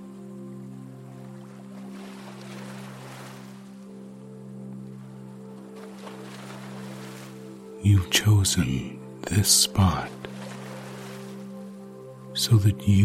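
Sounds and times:
small waves lapping the shore of a wind-choppy lake: 0:00.0 - 0:07.8, 0:09.8 - 0:12.0
speech: 0:07.8 - 0:10.4, 0:12.4 - 0:13.0.

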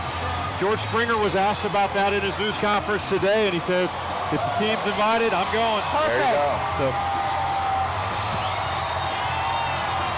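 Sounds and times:
large outdoor crowd cheering at a parade: 0:00.0 - 0:10.1
speech: 0:00.6 - 0:07.2
whoops and yells from parade crowd: 0:06.0 - 0:10.1.

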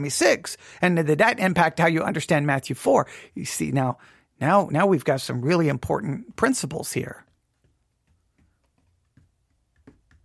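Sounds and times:
speech: 0:00.0 - 0:07.3
fingers tapping on a desk: 0:07.2 - 0:10.2.

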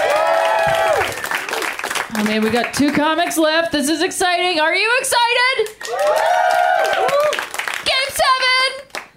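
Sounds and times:
excited people whooping and cheering: 0:00.0 - 0:01.6, 0:05.8 - 0:07.6
audience clapping: 0:00.0 - 0:03.5, 0:05.5 - 0:09.1
speech: 0:02.2 - 0:07.4.

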